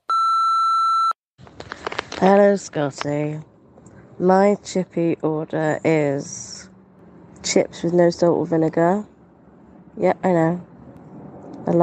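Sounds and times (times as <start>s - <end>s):
steady electronic beep: 0.1s - 1.2s
speech: 2.2s - 3.5s, 4.2s - 6.6s, 7.4s - 9.1s, 10.0s - 10.7s, 11.6s - 11.8s.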